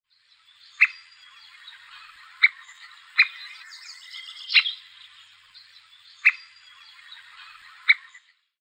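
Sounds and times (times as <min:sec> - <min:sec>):
Picoides tridactylus three-toed woodpecker: 0:00.7 - 0:05.1, 0:06.2 - 0:08.3.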